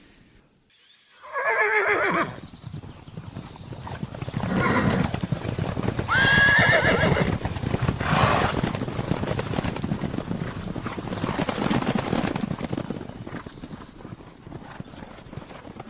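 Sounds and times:
horse neighing shrilly: 1.2 - 2.4, 4.5 - 5.1, 6.1 - 7.3
horses galloping: 1.7 - 15.8.

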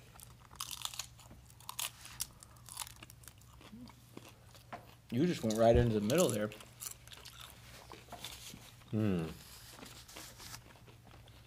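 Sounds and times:
crunching and chewing on a chip: 0.0 - 11.4
speech: 5.1 - 6.7, 8.9 - 9.4.

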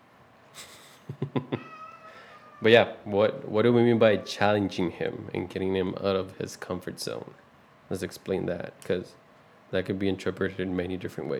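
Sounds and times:
male cat meowing: 1.6 - 3.0, 3.9 - 4.9
speech: 2.6 - 11.3.

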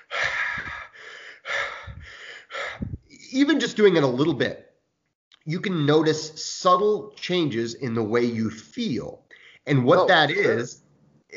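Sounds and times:
heavy breathing through the mouth: 0.0 - 3.1
speech: 3.3 - 4.7, 5.5 - 11.3.

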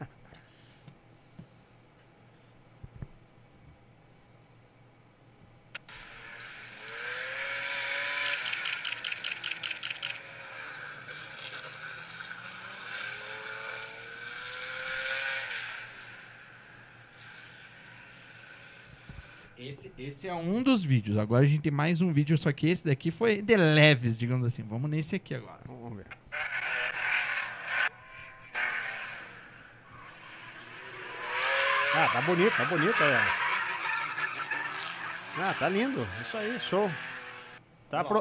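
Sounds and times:
championship race car engine accelerating: 5.8 - 19.4, 26.3 - 37.6
speech: 19.6 - 25.6, 32.1 - 33.4, 35.4 - 37.1, 37.9 - 38.1.

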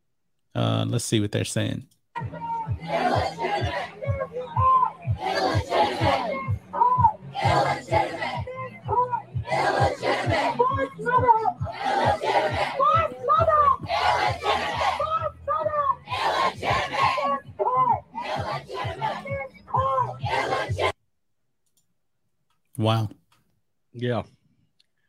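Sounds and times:
speech: 0.6 - 2.0, 22.8 - 23.2, 24.0 - 24.4
large protest crowd chanting and shouting: 2.2 - 21.0.

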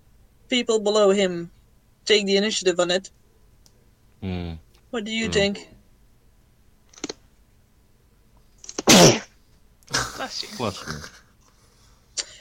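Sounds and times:
speech: 0.5 - 3.2, 4.2 - 5.8, 10.3 - 11.2
person sneezing: 8.8 - 9.3.

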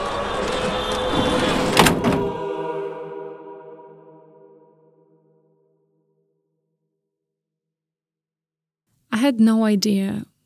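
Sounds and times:
heavy police van door rumbling along its track: 0.4 - 2.4
heavy police van door slamming shut with a double bang: 1.7 - 2.4
speech: 9.3 - 10.3.

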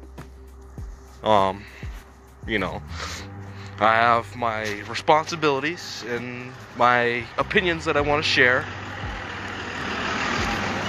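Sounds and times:
broadband road noise: 0.3 - 10.8
speech: 1.2 - 1.8, 2.4 - 3.2, 3.8 - 8.8
heavy truck rumbling past on a busy street: 4.8 - 10.8.

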